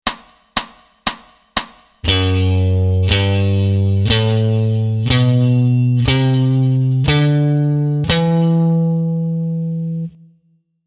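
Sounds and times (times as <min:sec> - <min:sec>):
guitar sixth string in D Mixolydian: 0:02.0 - 0:10.2.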